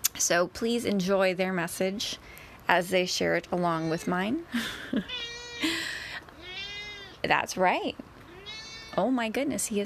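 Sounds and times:
speech: 0:00.2 - 0:05.8, 0:07.3 - 0:08.0, 0:09.0 - 0:09.8
cat meowing: 0:05.0 - 0:05.7, 0:06.3 - 0:07.2, 0:08.2 - 0:09.0.

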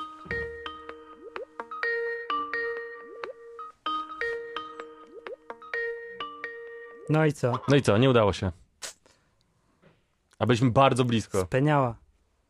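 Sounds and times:
phone ringtone melody over a speakerphone: 0:00.0 - 0:07.8
speech: 0:07.1 - 0:08.6, 0:10.4 - 0:12.0.

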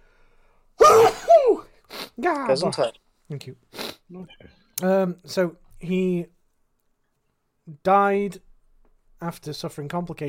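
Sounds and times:
person sneezing: 0:00.8 - 0:02.9
speech: 0:02.2 - 0:06.4, 0:07.7 - 0:08.5, 0:09.2 - 0:10.2.

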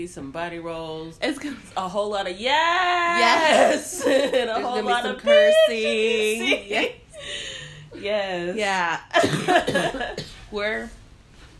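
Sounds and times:
speech: 0:00.0 - 0:07.4, 0:08.0 - 0:11.0
person with a cold coughing: 0:09.2 - 0:10.4.

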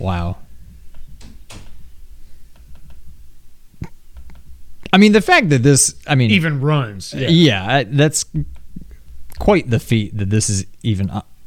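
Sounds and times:
speech: 0:00.0 - 0:00.4, 0:04.9 - 0:08.6, 0:09.4 - 0:11.3
quiet room hum: 0:00.0 - 0:11.4
door shutting with a solid low thump: 0:00.9 - 0:02.0.

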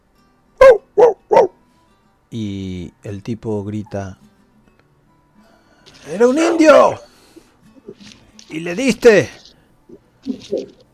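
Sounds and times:
dog barking: 0:00.6 - 0:01.6
speech: 0:02.3 - 0:04.3, 0:06.0 - 0:07.1, 0:07.9 - 0:09.4.

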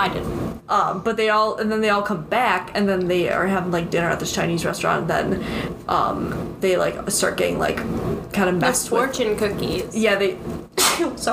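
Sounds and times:
speech: 0:00.0 - 0:11.3
sneeze: 0:10.8 - 0:11.2.

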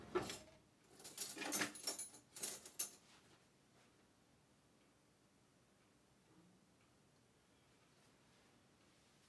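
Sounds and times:
utensils and cookware clattering while cooking eggplant stewed in tomato: 0:00.2 - 0:03.1.

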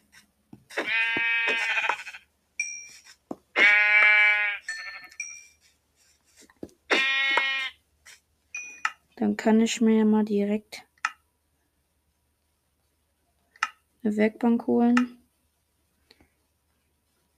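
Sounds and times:
sheep bleating in a video game: 0:00.8 - 0:02.2, 0:03.6 - 0:04.6, 0:06.9 - 0:07.8
speech: 0:09.2 - 0:10.9, 0:14.0 - 0:15.2.

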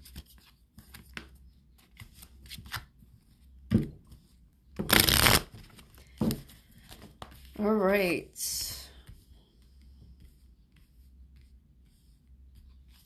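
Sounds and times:
deck of oracle cards being shuffled: 0:00.0 - 0:02.9, 0:04.8 - 0:07.6
soft riffling and cards flicking together: 0:04.9 - 0:05.5
speech: 0:07.6 - 0:08.6.

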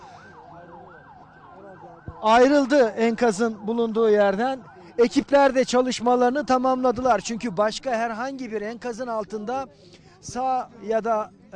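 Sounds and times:
ambulance siren wailing in rapid rising and falling sweeps: 0:00.0 - 0:08.3
low rumble of traffic or engine noise: 0:00.0 - 0:11.5
speech: 0:02.2 - 0:11.5.

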